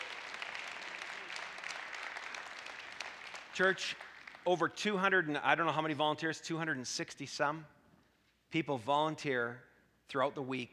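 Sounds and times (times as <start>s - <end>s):
large crowd clapping: 0.0s - 4.8s
speech: 3.6s - 7.8s, 8.5s - 10.7s.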